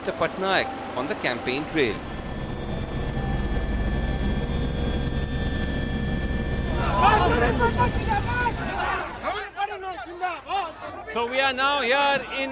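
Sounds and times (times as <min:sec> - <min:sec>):
speech: 0:00.0 - 0:02.1, 0:07.4 - 0:08.8, 0:09.9 - 0:12.5
helicopter engine and rotor roar: 0:00.0 - 0:09.3
crowd of voices: 0:06.7 - 0:12.5.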